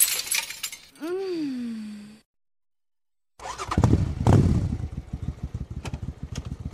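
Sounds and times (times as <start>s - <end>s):
motorcycle being ridden down a road: 3.4s - 6.7s.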